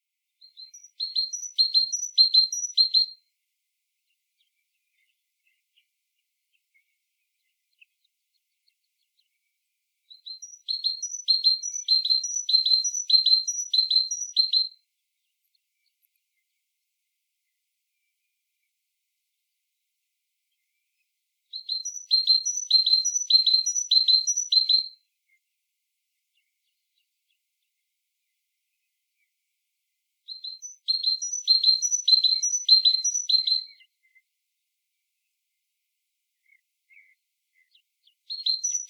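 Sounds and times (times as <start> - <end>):
great tit singing: 0.4 - 3.2, 6.5 - 16.6, 21.5 - 24.9, 30.3 - 34.2, 36.4 - 38.8.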